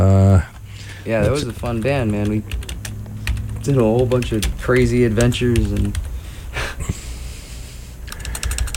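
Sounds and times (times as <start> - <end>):
speech: 1.0 - 2.6, 3.6 - 6.0
typing on a computer keyboard: 1.2 - 6.1, 8.1 - 8.7.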